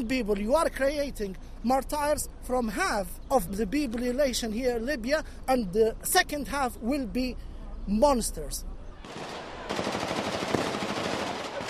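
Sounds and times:
speech: 0.0s - 10.0s
dense automatic gunfire, rounds shot into the air at a regime rally: 9.1s - 11.6s.

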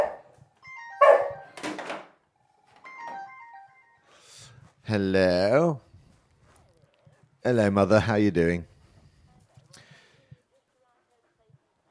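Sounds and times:
dog barking sharply: 0.0s - 0.3s, 1.0s - 1.4s
electronic telephone ringing in a melodic pattern: 0.6s - 2.0s, 2.8s - 4.1s
speech: 4.9s - 5.9s, 7.4s - 8.7s.

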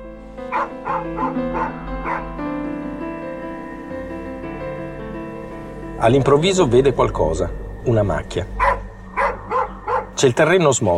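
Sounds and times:
steady sustained musical drone: 0.0s - 10.9s
dog barking on a deserted beach at Marina di Vecchiano in Pisa: 0.5s - 2.3s, 8.6s - 10.2s
speech: 0.5s - 2.5s, 6.0s - 8.6s, 10.2s - 10.9s.

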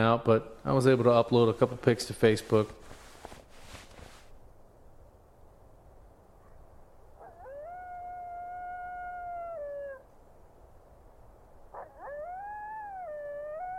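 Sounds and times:
speech: 0.0s - 3.0s
faint hissing outdoor background at a tent camp among shrubs: 0.0s - 13.7s
brief rustle: 2.4s - 4.4s
coyotes howling at night at a tent camp among shrubs: 7.2s - 10.1s, 11.7s - 13.7s.

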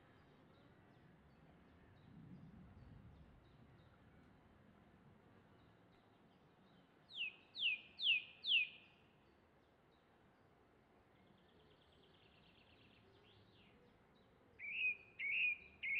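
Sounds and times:
song thrush in Oxfordshire England singing descending whistled sweeps: 14.6s - 15.9s.

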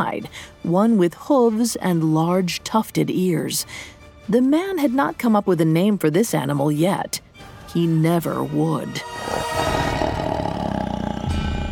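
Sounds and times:
speech: 0.0s - 9.5s
tiger roaring: 9.0s - 11.6s.

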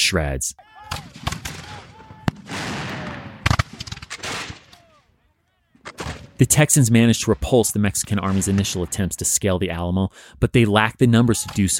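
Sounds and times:
speech: 0.1s - 1.3s, 6.4s - 11.7s
artillery firing cannonballs and scrap metal in battle: 0.9s - 5.0s, 5.8s - 6.7s, 7.3s - 9.0s.

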